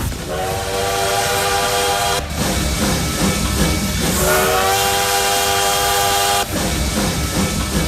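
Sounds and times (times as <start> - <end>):
train rumbling: 0.0 - 7.8
loud train whistle blowing: 0.3 - 2.3, 4.2 - 6.5.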